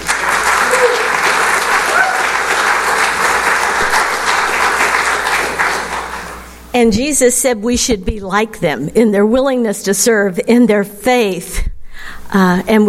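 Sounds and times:
audience applause in a large room: 0.0 - 6.5
speech: 6.8 - 11.7, 12.3 - 12.8.

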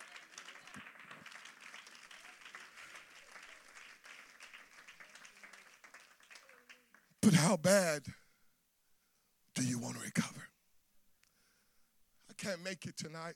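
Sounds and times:
audience clapping: 0.0 - 7.4
speech: 7.3 - 8.2, 12.5 - 13.3.

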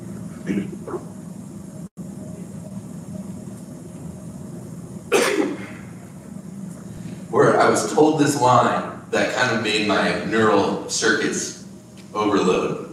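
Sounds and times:
low room hum: 0.0 - 12.9
speech: 0.5 - 1.2, 7.4 - 12.8
person coughing: 5.1 - 5.9.

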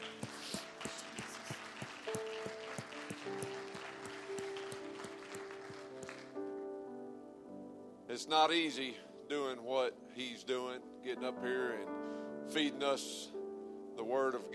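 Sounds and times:
church service audience clapping: 0.0 - 6.5
speech: 8.2 - 13.3, 14.0 - 14.5.

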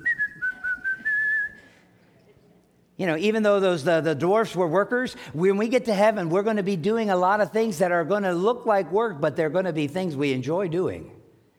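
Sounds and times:
person whistling a short bright tune: 0.0 - 1.8
speech: 3.0 - 11.2.

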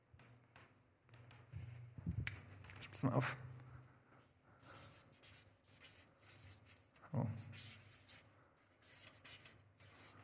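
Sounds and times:
speech: 3.0 - 3.5, 7.2 - 7.5
failing pen scribbling on paper: 4.6 - 10.2.

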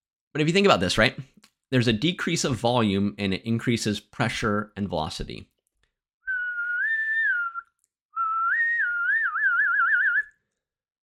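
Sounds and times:
speech: 0.4 - 5.5
person whistling at varying pitch: 6.3 - 10.4.

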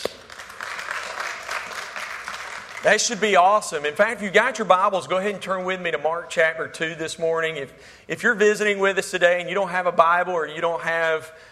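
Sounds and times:
audience clapping: 0.0 - 3.6
speech: 2.8 - 11.4.

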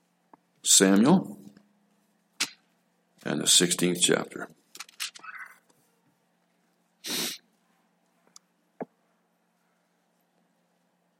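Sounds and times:
speech: 0.6 - 1.4, 3.2 - 4.6
nose blown by a speaker during a sermon: 7.0 - 7.5
soft breathy sniffs: 7.0 - 7.5.

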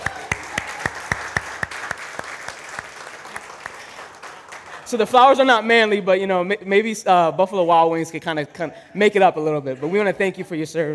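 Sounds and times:
small group of audience clapping at a gathering: 0.0 - 5.0
speech: 4.9 - 10.9.

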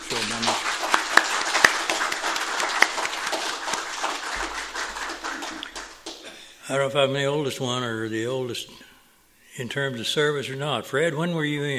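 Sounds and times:
audience applause honoring veterans: 0.0 - 6.3
speech: 6.7 - 8.9, 9.6 - 11.7.

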